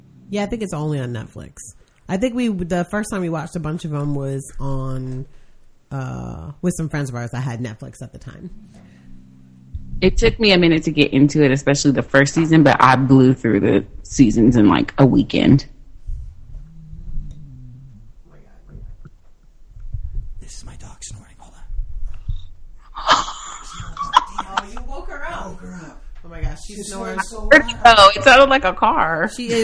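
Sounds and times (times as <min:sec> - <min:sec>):
speech: 0:00.3 - 0:08.9, 0:10.0 - 0:15.8, 0:26.7 - 0:29.6
deeply sleeping woman snoring: 0:08.6 - 0:10.0, 0:16.4 - 0:18.4
laughter: 0:23.0 - 0:25.5, 0:26.8 - 0:28.6.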